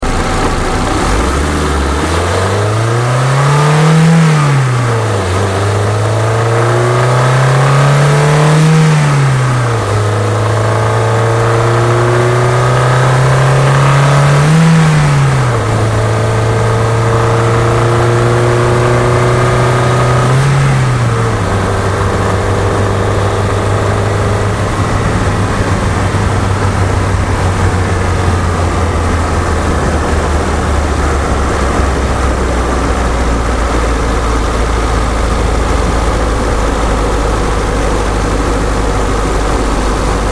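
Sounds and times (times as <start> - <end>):
Ford Fiesta accelerating hard outside: 0.0 - 40.3.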